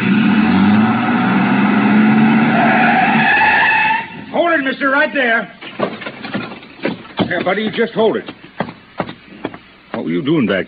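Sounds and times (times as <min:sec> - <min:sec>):
tires skidding and squealing: 0:00.0 - 0:04.4
truck engine started and roaring: 0:00.0 - 0:10.5
speech: 0:04.9 - 0:05.6, 0:07.3 - 0:08.4, 0:10.0 - 0:10.6.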